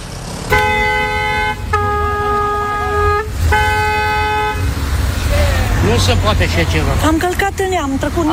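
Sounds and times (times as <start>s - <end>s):
road traffic rumble on a busy boulevard: 0.0s - 8.3s
long loud car horn blasts: 0.5s - 4.9s
speech: 6.0s - 8.3s.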